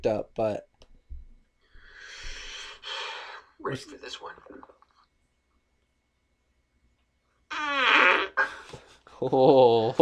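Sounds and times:
speech: 0:00.0 - 0:00.7, 0:03.6 - 0:04.8, 0:07.5 - 0:10.0
fart from an online video clip played through speakers: 0:07.5 - 0:08.6.

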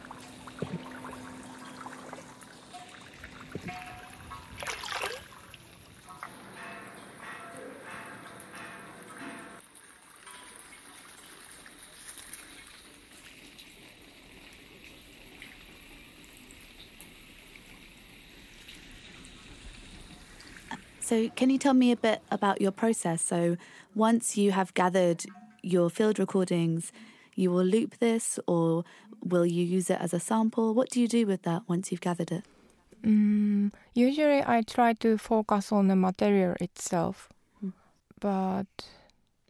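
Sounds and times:
underground water trickling through a pipe: 0:00.0 - 0:22.8
speech: 0:21.1 - 0:39.0.

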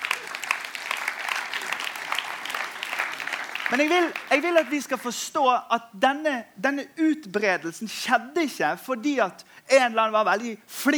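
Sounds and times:
audience clapping: 0:00.0 - 0:05.2
speech: 0:03.7 - 0:10.9.

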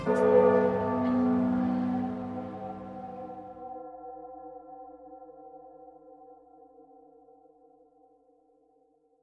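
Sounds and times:
deep bell tolling: 0:00.0 - 0:03.7.

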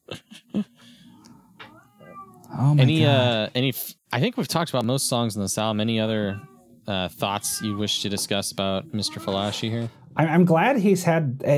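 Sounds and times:
cat meowing softly: 0:01.0 - 0:03.3, 0:06.2 - 0:10.2
speech: 0:02.6 - 0:11.5.

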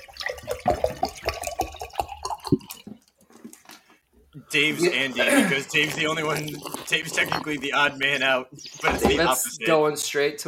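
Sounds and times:
water poured into a glass: 0:00.0 - 0:03.0, 0:05.1 - 0:07.8
speech: 0:04.5 - 0:10.4.

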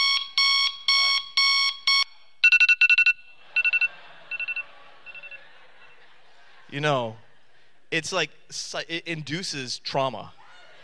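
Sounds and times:
alarm clock ringing in sharp piercing electronic beeps: 0:00.0 - 0:05.4
laughter: 0:03.3 - 0:07.8
speech: 0:06.7 - 0:07.2, 0:07.9 - 0:10.4.

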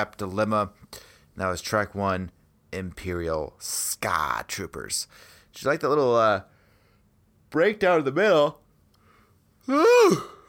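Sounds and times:
speech: 0:00.0 - 0:06.5, 0:07.5 - 0:08.6, 0:09.6 - 0:10.4
person yawning: 0:09.6 - 0:10.4.

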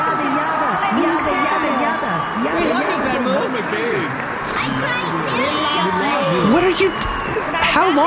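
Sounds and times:
dense loud crowd cheering and shouting: 0:00.0 - 0:08.0
scattered clapping: 0:01.0 - 0:05.6
speech: 0:03.6 - 0:08.0.

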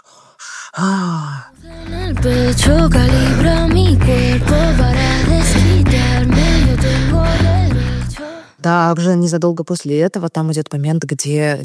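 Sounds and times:
heavy breathing with a sharp gasp and groaning breath in a song: 0:00.0 - 0:08.6
speech: 0:00.8 - 0:05.0, 0:08.6 - 0:11.6
sung notes: 0:01.6 - 0:08.4.

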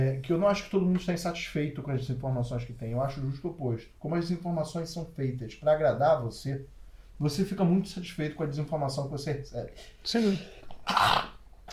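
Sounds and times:
speech: 0:00.2 - 0:11.7
person sneezing: 0:10.2 - 0:11.4.

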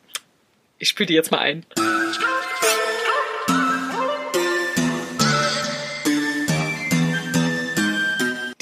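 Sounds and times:
speech: 0:00.8 - 0:02.7
song with traditional Korean plucked and struck instruments: 0:01.8 - 0:08.6.

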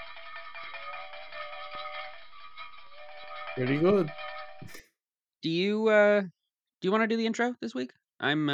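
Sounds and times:
bell-like ringtone from a small audio recording device: 0:00.0 - 0:04.8
speech: 0:03.6 - 0:08.5.

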